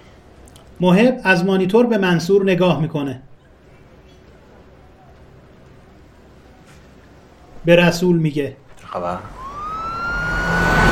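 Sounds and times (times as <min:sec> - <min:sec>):
speech: 0:00.8 - 0:03.3, 0:07.7 - 0:09.4
two police car sirens wailing: 0:09.2 - 0:10.9.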